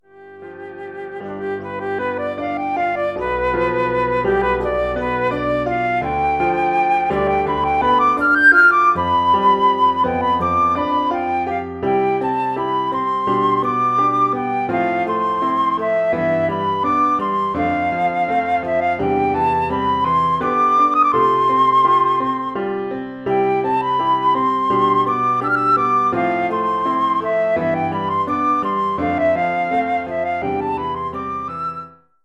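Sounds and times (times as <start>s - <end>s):
flute solo: 0.0s - 32.2s.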